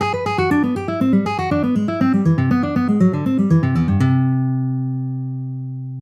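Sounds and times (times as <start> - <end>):
guitar legato and hybrid picking exercise: 0.0 - 5.9.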